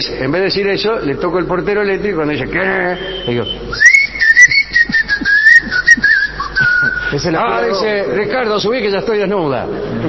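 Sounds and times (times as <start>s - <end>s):
speech: 0.0s - 3.9s, 7.1s - 10.0s
person whistling a wavering tune: 3.0s - 7.2s
faint rhythmic tapping: 4.4s - 7.0s.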